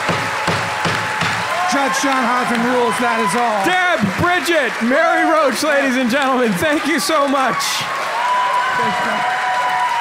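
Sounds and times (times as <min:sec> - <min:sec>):
gavel banging: 0:00.0 - 0:01.5
speech: 0:01.7 - 0:08.0, 0:08.8 - 0:09.4.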